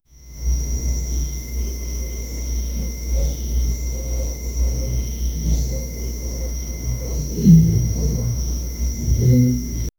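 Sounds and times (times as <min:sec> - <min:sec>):
night insects: 0:00.0 - 0:09.9
distant owl: 0:04.0 - 0:09.9.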